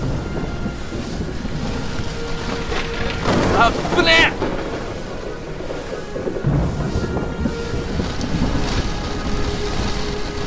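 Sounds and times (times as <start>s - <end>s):
rain: 0.0s - 10.4s
rumble of thunder from a lightning strike: 0.0s - 10.4s
wind: 0.0s - 10.4s
speech: 3.6s - 4.4s.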